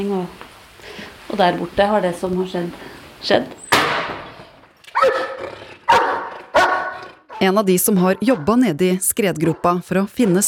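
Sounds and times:
speech: 0.0 - 0.4, 1.3 - 3.6, 7.4 - 10.4
police dog from a police dog unit barking: 4.9 - 8.7, 9.3 - 10.4.

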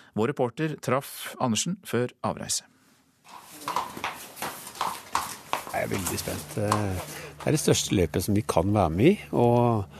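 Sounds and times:
speech: 0.2 - 3.4, 5.7 - 9.9
trotting horse hooves clip-clopping: 3.3 - 8.0
low hum: 4.6 - 9.9.

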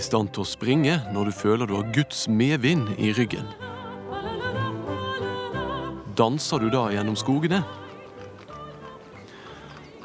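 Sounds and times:
speech: 0.0 - 3.7, 6.2 - 7.8
horse and cart hooves clip-clopping: 4.2 - 10.0.

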